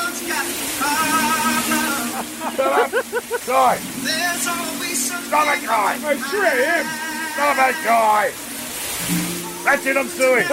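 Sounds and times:
man singing loudly and wordlessly: 0:00.0 - 0:03.0, 0:04.0 - 0:08.4, 0:09.7 - 0:10.5
shower water running: 0:00.0 - 0:10.5
laughter: 0:00.8 - 0:03.8, 0:10.3 - 0:10.5
speech: 0:02.6 - 0:08.5, 0:09.1 - 0:10.5.

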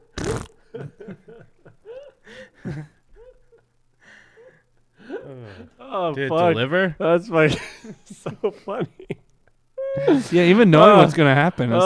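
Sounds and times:
loud fart from a man kicked in a leg sweep: 0:00.0 - 0:00.7
speech: 0:06.1 - 0:09.1, 0:10.0 - 0:11.8.

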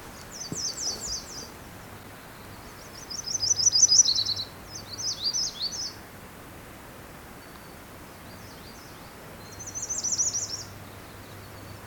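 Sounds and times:
Myrtle Warbler singing a thin high trill: 0:00.0 - 0:01.6, 0:02.2 - 0:06.0, 0:08.3 - 0:11.8
background hiss: 0:00.0 - 0:11.8.

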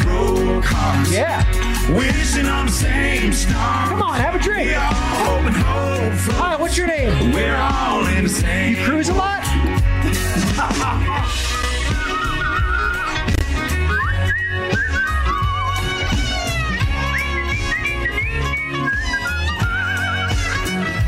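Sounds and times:
loud full band playing: 0:00.0 - 0:21.0
speech: 0:01.2 - 0:09.8
laughter: 0:09.5 - 0:19.4
person whistling a bright warbling birdlike melody: 0:11.9 - 0:16.1, 0:16.8 - 0:20.0.

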